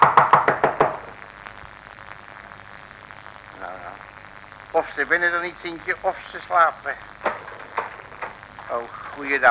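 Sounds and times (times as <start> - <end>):
knocking on a small wooden door: 0.0 - 1.0
speech: 4.8 - 7.1, 8.7 - 9.4.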